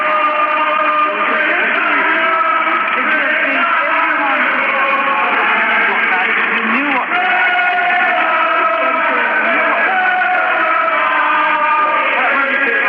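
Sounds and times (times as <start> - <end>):
large outdoor crowd at 10 Downing Street in London singing and cheering: 0.0 - 12.8.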